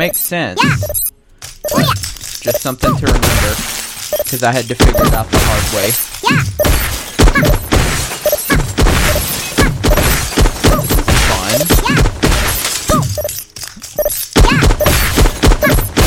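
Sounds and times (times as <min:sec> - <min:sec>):
speech: 0:00.0 - 0:01.0, 0:01.6 - 0:06.8, 0:07.4 - 0:07.7
dense game-like noise: 0:00.0 - 0:16.0
glass tubes shattering when broken with bats in a video game: 0:01.7 - 0:16.0.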